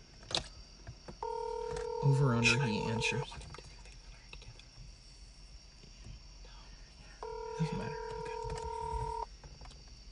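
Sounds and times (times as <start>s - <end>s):
low hum: 0.0s - 10.1s
phone on speakerphone playing electronic dialing tone: 1.2s - 3.2s, 7.2s - 9.3s
speech: 2.0s - 3.4s.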